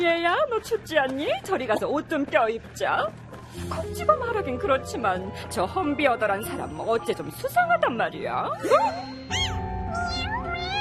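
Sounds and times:
speech: 0:00.0 - 0:09.6
cats meowing inside a bag: 0:09.3 - 0:10.7.

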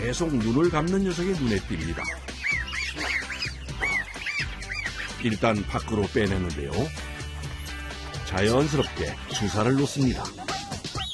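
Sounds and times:
speech: 0:00.1 - 0:02.3, 0:05.2 - 0:07.0, 0:08.3 - 0:10.4
young weak-immunity chicks peeping on a farm: 0:01.2 - 0:06.1, 0:08.3 - 0:11.1.

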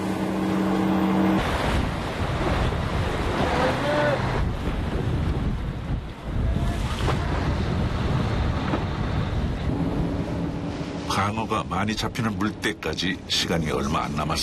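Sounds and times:
fishing boat hull slapping through the sea: 0:00.0 - 0:11.2
fishing boat engine droning while speeding across the sea toward Marado: 0:00.0 - 0:14.4
gusts of wind buffeting at sea: 0:00.0 - 0:14.4
loud rushing sea water and spray: 0:00.0 - 0:14.4
speech: 0:11.5 - 0:14.4.

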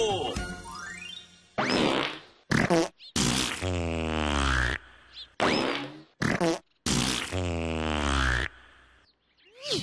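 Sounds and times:
long drawn-out buzzy fart: 0:01.6 - 0:04.8, 0:05.4 - 0:08.6.

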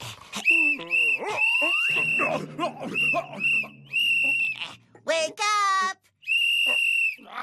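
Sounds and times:
shrill whistle blast: 0:00.4 - 0:04.6, 0:06.2 - 0:07.3
speech: 0:02.7 - 0:03.8.

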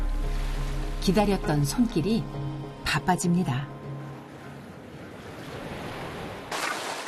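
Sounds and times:
speech: 0:01.0 - 0:03.8
gentle sea waves washing onto the shore of Dokgeodo island: 0:04.1 - 0:07.0.

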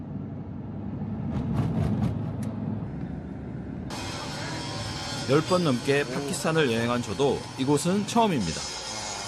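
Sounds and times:
heavy road traffic of decorated trucks on a road at Taxila, Pakistan: 0:00.0 - 0:09.2
speech: 0:05.3 - 0:08.8.

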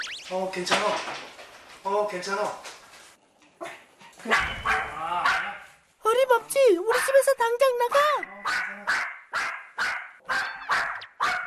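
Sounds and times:
speech: 0:00.3 - 0:02.7, 0:04.2 - 0:04.8, 0:06.1 - 0:08.9
dog barking at a stranger: 0:04.2 - 0:05.7, 0:06.9 - 0:07.3, 0:07.9 - 0:11.4.

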